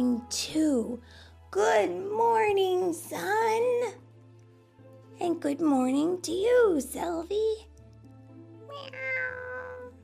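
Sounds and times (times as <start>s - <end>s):
speech: 0.0s - 4.0s, 5.2s - 7.7s, 8.7s - 9.5s
cat meowing: 8.7s - 10.0s.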